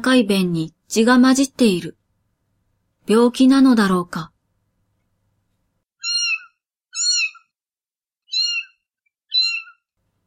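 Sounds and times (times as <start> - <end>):
speech: 0.0 - 2.0, 3.1 - 4.3
kitten crying pleadingly: 6.0 - 7.5, 8.3 - 9.8.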